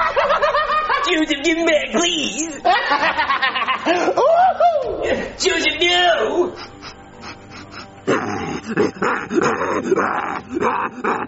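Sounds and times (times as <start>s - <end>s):
laughter: 0.0s - 5.4s, 8.7s - 11.2s
speech: 1.2s - 6.7s, 8.1s - 11.2s
dog in a neighborhood barking and snarling: 7.7s - 11.2s.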